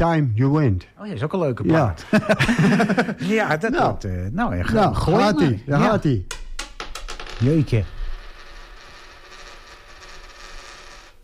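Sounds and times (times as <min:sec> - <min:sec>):
speech: 0:00.0 - 0:06.4, 0:07.4 - 0:08.0
laughter: 0:01.8 - 0:03.5
tossed coin clattering and spinning on a hard surface: 0:06.5 - 0:11.2.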